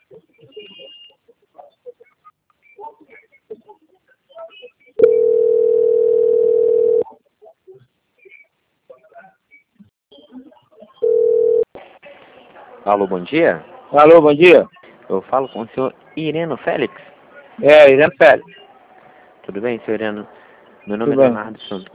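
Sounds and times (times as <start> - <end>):
telephone tones while a call is being transferred: 5.0 - 7.0, 11.0 - 11.7
speech: 12.9 - 18.6, 19.5 - 21.9.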